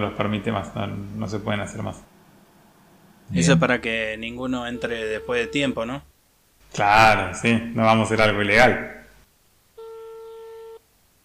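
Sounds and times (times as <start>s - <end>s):
speech: 0.0s - 2.2s, 3.3s - 6.1s, 6.7s - 9.0s
telephone busy signal while placing a call: 3.3s - 3.7s, 9.8s - 10.8s.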